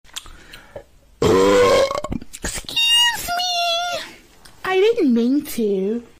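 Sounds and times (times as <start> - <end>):
person burping: 1.2 - 2.2
person speaking: 2.4 - 6.1.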